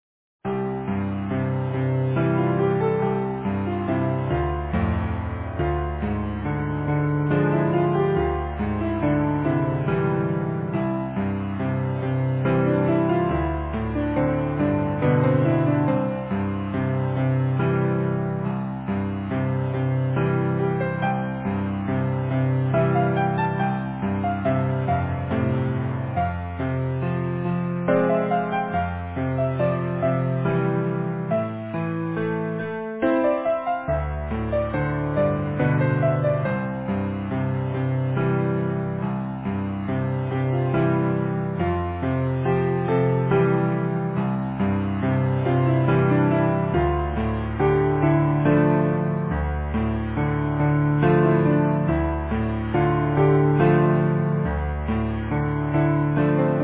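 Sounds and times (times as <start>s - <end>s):
easy piano piece: 0.4s - 56.6s.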